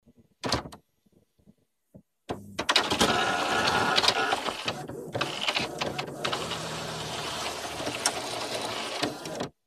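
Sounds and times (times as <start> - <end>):
printer: 2.6 - 9.6.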